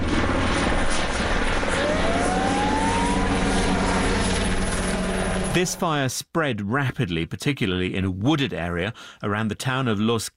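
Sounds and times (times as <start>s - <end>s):
firefighting helicopter dumping water on a wildfire in a wooded area: 0.0s - 5.8s
speech: 5.6s - 10.3s.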